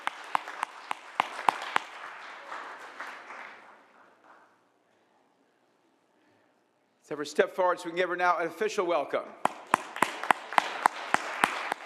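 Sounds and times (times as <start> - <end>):
small crowd applauding: 0.0 - 4.4, 9.5 - 11.8
speech: 7.1 - 9.5.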